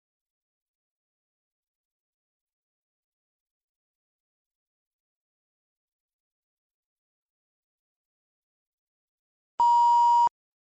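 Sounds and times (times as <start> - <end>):
steady mid-high electronic beep before recording starts: 9.6 - 10.3.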